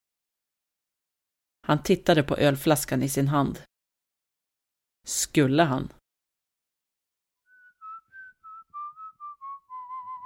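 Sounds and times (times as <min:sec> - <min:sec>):
speech: 0:01.6 - 0:03.7, 0:05.0 - 0:06.0
man whistling an off-key tune while watering the garden: 0:07.4 - 0:10.2.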